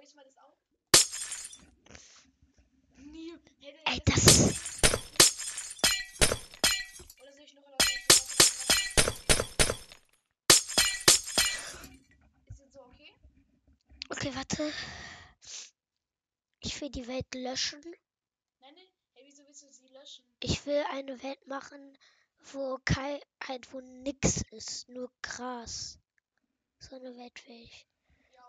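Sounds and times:
glassy breaking and clinking of a video game block being mined: 1.0s - 1.6s, 4.3s - 7.2s, 7.8s - 11.9s
speech: 14.2s - 15.1s, 16.8s - 18.0s, 19.6s - 26.0s, 26.8s - 27.9s.

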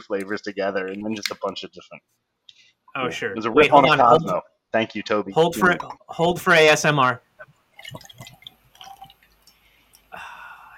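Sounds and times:
speech: 0.0s - 8.4s
ice clinking in a drink: 7.8s - 9.5s.

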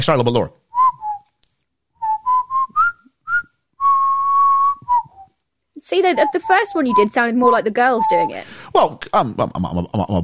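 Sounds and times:
speech: 0.0s - 0.6s, 5.9s - 10.2s
person whistling a short melodic tune: 0.7s - 1.2s, 2.0s - 5.3s, 6.2s - 8.6s.

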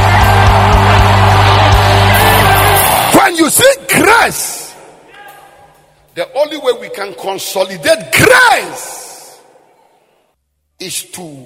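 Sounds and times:
overlapping yells and whoops: 0.0s - 3.2s
large audience shouting and screaming at a preacher's call: 0.0s - 4.5s
speech: 6.2s - 9.0s, 10.8s - 11.4s.

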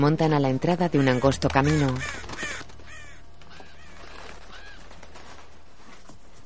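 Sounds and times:
speech: 0.0s - 2.4s
crows cawing beside corpses in a green forest: 0.9s - 5.6s.

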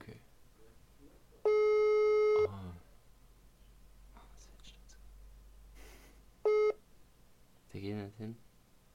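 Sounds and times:
phone ringing tone on a loudspeaker during a studio call: 1.5s - 2.5s, 6.5s - 6.8s
speech: 7.8s - 8.5s.

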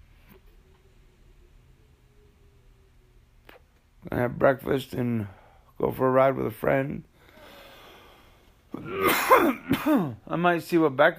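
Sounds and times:
speech: 4.0s - 7.1s, 8.8s - 11.1s
man coughing: 8.7s - 10.2s.

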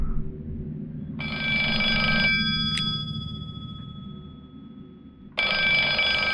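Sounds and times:
steady low hum: 0.0s - 6.3s
bright electronic trilling telephone ring: 1.2s - 4.5s, 5.4s - 6.3s.

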